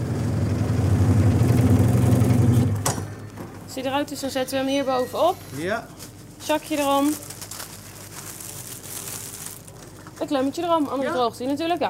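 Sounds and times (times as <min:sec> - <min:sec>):
bread slicing machine motor running as it cuts a loaf: 0:00.0 - 0:03.0
speech: 0:03.8 - 0:07.3, 0:10.2 - 0:11.8.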